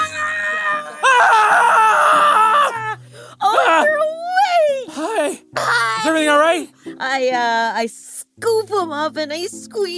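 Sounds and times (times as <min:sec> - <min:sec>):
person letting out raw sustained primal screams: 0:00.0 - 0:06.3
person gasping: 0:03.0 - 0:03.4
speech: 0:07.2 - 0:09.9.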